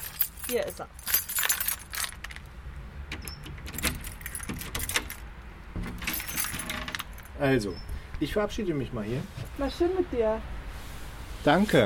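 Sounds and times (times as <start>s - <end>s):
keys jangling at the front door: 0.0s - 2.5s, 3.1s - 7.4s
speech: 0.5s - 1.1s, 7.4s - 10.6s, 11.4s - 11.8s.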